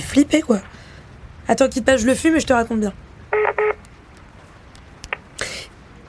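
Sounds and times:
speech: 0.1s - 0.8s, 1.5s - 3.8s
mobile phone ringing with electronic tone bursts for an incoming call: 3.3s - 3.8s.

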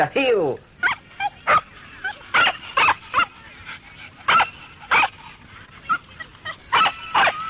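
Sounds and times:
speech: 0.0s - 0.7s
dog barking: 0.8s - 3.4s, 4.3s - 5.2s, 5.9s - 7.4s
dog whimpering: 0.8s - 7.4s.

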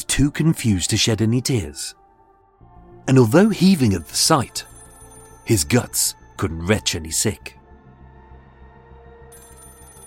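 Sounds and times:
speech: 0.1s - 2.0s, 3.1s - 4.7s, 5.5s - 7.6s
telephone call to emergency number ringing: 3.4s - 6.2s, 9.3s - 10.0s.

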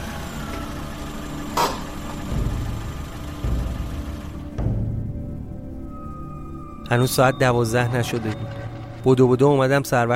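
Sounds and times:
car engine idling: 0.0s - 5.9s
speech: 6.9s - 10.1s.

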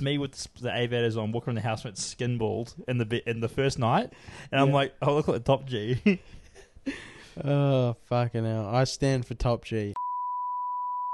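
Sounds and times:
speech: 0.0s - 10.1s
censor bleep: 10.0s - 11.1s.

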